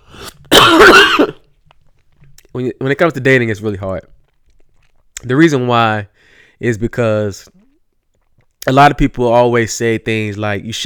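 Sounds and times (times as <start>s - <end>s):
loud throat clearing: 0.2s - 1.5s
rough cough: 0.2s - 1.5s
speech: 2.6s - 4.2s, 5.2s - 7.6s, 8.6s - 10.8s.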